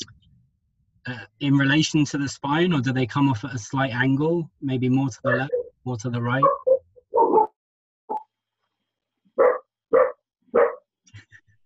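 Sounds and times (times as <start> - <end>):
speech: 1.0 - 6.6
next-door neighbour's dog barking: 6.4 - 7.5, 9.4 - 10.8.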